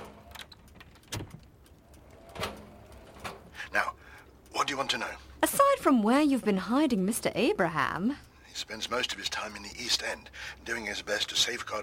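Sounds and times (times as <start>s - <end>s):
door closing: 0.0s - 1.5s, 2.1s - 3.6s
door lock clicking: 0.0s - 3.5s
faint hiss: 0.0s - 5.6s, 8.1s - 11.8s
speech: 4.7s - 11.8s.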